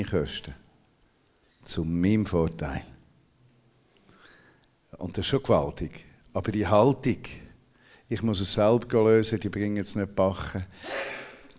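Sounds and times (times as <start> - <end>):
speech: 0.0 - 0.6, 1.6 - 2.9, 4.9 - 7.4, 8.1 - 11.2
sneeze: 10.8 - 11.5.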